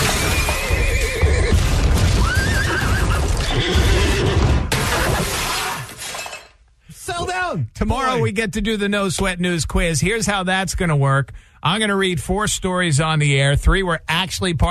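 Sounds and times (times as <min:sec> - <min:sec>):
horse whinnying: 0:00.0 - 0:05.8
speech: 0:07.8 - 0:14.6.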